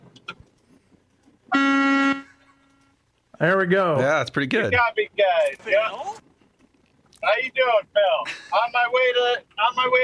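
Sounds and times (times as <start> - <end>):
faint rumble: 0.0 - 1.5, 2.4 - 10.0
truck horn blast: 1.5 - 2.8
speech: 3.4 - 6.2, 7.2 - 10.0.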